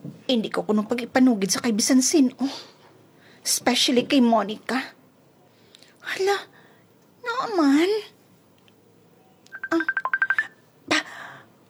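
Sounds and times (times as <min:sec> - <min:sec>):
speech: 0:00.3 - 0:02.7, 0:03.4 - 0:05.0, 0:06.1 - 0:06.5, 0:07.4 - 0:08.1, 0:09.7 - 0:10.0
mobile phone ringing with short electronic tones for an incoming call: 0:09.5 - 0:10.6.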